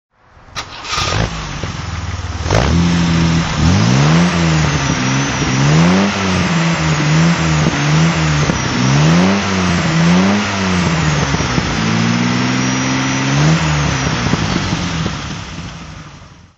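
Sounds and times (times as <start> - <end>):
sports car engine throttle: 0.6 - 16.5.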